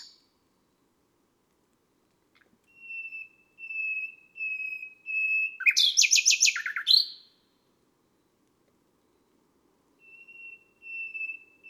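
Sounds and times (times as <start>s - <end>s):
nightingale drawn-out whistled notes on a May night: 2.7s - 7.2s, 10.0s - 11.6s.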